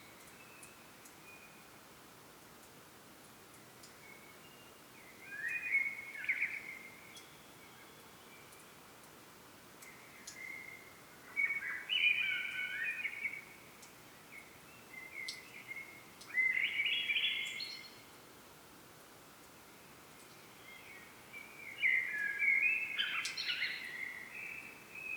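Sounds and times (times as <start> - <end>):
common blackbird Turdus merula singing fluty phrases: 5.2 - 8.0, 10.1 - 13.5, 14.9 - 18.0, 20.6 - 25.1.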